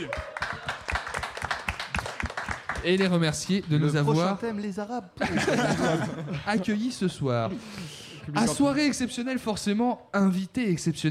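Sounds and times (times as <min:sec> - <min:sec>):
speech: 0:00.0 - 0:00.6, 0:02.8 - 0:11.0
small crowd applauding: 0:00.0 - 0:03.3
laughter: 0:05.2 - 0:07.7.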